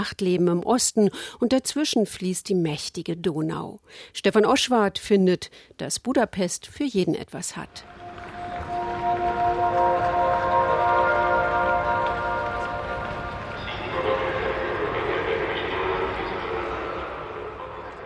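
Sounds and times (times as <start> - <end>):
speech: 0.0 - 8.0
indistinct voices of train announcements: 7.5 - 18.0
sustained tonal train sound at the Ostbahnhof in Budapest Hungary: 7.7 - 18.0.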